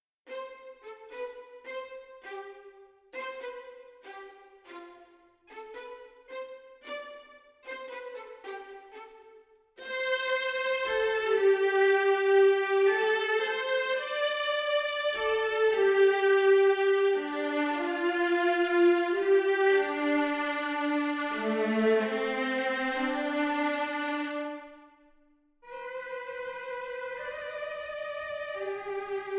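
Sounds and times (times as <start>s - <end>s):
symphonic strings: 0.3s - 29.3s.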